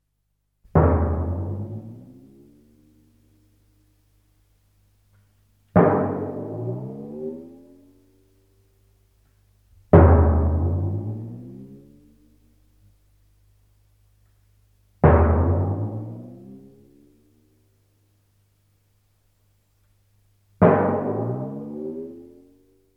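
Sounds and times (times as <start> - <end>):
timpani: 0.7 - 3.6, 5.7 - 8.0, 9.8 - 12.2, 15.0 - 17.2, 20.6 - 22.6.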